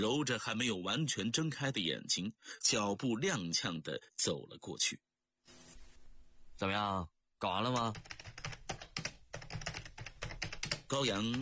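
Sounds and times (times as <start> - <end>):
speech: 0.0 - 5.6, 6.6 - 8.2, 10.9 - 11.4
fingers typing quickly on a computer keyboard writing and debugging a program: 7.7 - 11.4.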